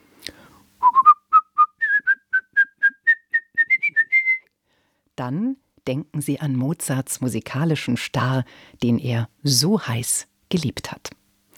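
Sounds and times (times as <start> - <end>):
person whistling a melody from a piano concerto: 0.8 - 4.5
speech: 5.2 - 11.2.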